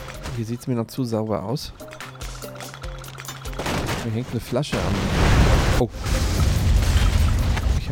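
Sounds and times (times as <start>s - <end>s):
speech: 0.4s - 1.9s, 4.1s - 6.2s
video game gas station explosion: 4.8s - 7.9s.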